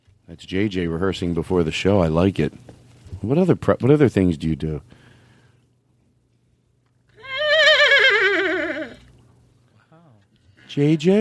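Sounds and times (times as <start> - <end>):
speech: 0.3 - 5.0, 10.8 - 11.2
person imitating a horse whinnying: 7.2 - 9.1.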